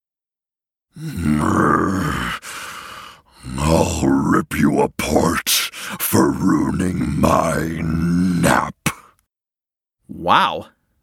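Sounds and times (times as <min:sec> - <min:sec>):
speech: 0:01.0 - 0:02.4, 0:03.7 - 0:08.7, 0:10.2 - 0:10.8
loud guttural growl of a voice imitating an angry creature: 0:01.0 - 0:09.1.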